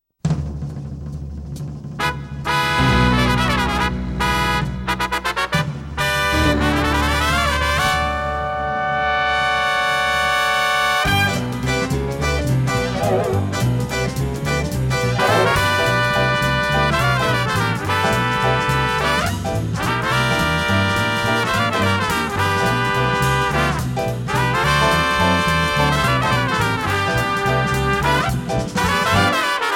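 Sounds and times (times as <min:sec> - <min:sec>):
trumpet playing blues and cantabile: 0:02.0 - 0:29.7.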